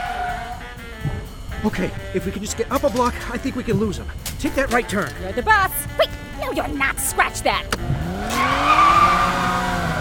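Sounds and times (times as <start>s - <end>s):
car tires skidding in a brake slide during a chase: 0.0s - 0.6s, 7.8s - 10.0s
speech: 1.6s - 8.8s
car engine: 7.7s - 10.0s.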